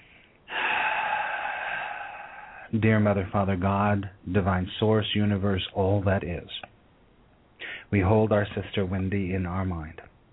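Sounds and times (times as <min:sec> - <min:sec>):
deep breath drawn in during a guided prayer: 0:00.0 - 0:02.7, 0:07.6 - 0:07.9
speech: 0:02.7 - 0:06.7, 0:07.9 - 0:10.1.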